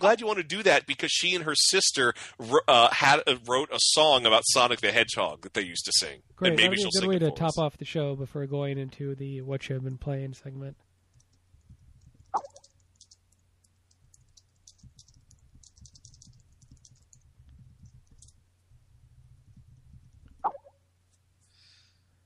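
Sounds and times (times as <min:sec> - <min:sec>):
speech: 0:00.0 - 0:10.8, 0:12.4 - 0:12.6
low rumble: 0:10.8 - 0:21.5
soft keyboard tapping: 0:11.1 - 0:20.4
keyboard key clicks: 0:14.1 - 0:17.2.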